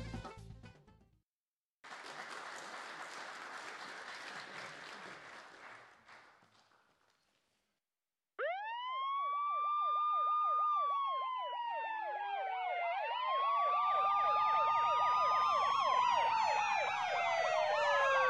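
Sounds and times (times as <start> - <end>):
emergency sirens wailing in the night: 8.4 - 18.2.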